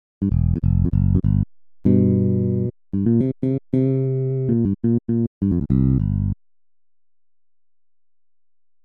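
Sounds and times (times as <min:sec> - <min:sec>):
jazz electric bass: 0:00.2 - 0:06.4.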